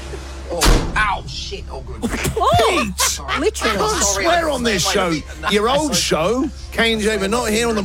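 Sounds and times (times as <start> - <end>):
low rumble: 0.0 - 7.8
speech: 0.5 - 7.8
old door slamming shut: 0.6 - 1.5
laughter: 1.5 - 6.5.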